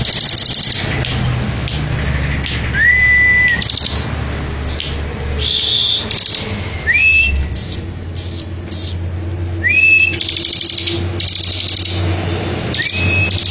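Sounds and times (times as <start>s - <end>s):
bar-winged prinia singing short buzzy chattering bursts: 0.0s - 13.4s
steady low background hum: 0.0s - 13.4s
sharp rising bird whistles: 2.7s - 4.2s, 5.4s - 9.0s, 9.6s - 13.4s.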